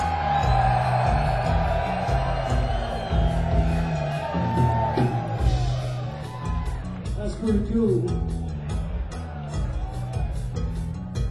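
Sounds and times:
whoops and yells from a concert crowd: 0.0s - 6.9s
big concert crowd of fans screaming and cheering: 0.0s - 11.2s
speech: 7.5s - 8.4s.

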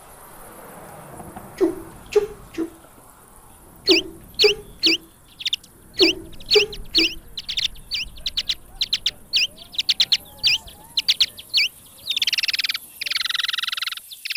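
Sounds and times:
bat echolocation chirps: 3.8s - 14.3s.

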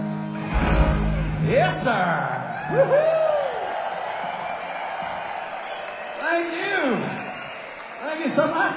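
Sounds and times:
concert crowd roaring and cheering: 0.1s - 8.7s
speech: 1.5s - 3.2s, 8.2s - 8.7s
loud rising whoop from concert crowd: 2.6s - 3.7s.

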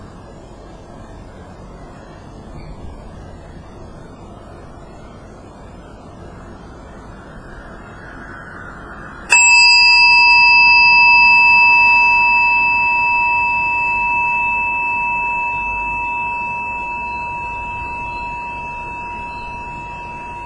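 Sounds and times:
meditation bell struck and ringing: 9.3s - 20.4s.

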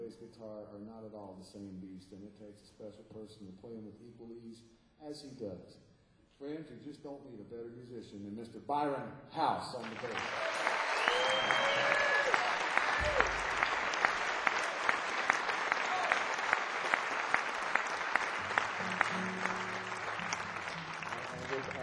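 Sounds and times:
speech: 0.1s - 13.5s
audience applauding after a bass player is introduced: 9.8s - 21.8s.

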